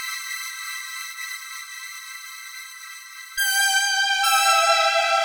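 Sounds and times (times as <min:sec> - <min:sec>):
soft synth: 0:03.4 - 0:05.2.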